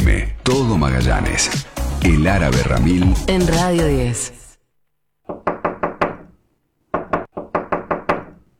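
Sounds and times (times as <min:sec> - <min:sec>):
speech: 0:00.2 - 0:04.4
knocking on a door: 0:05.3 - 0:06.2, 0:06.9 - 0:08.4.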